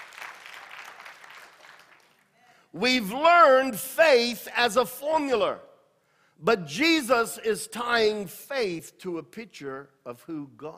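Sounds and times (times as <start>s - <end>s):
crowd clapping: 0.0s - 2.4s
speech: 2.7s - 5.7s, 6.4s - 10.7s.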